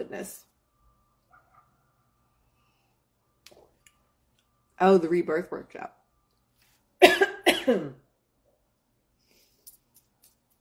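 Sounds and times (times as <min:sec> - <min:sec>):
speech: 0:00.0 - 0:00.5, 0:04.8 - 0:06.0, 0:07.0 - 0:08.0
person coughing from a tickle in the throat: 0:07.0 - 0:08.0.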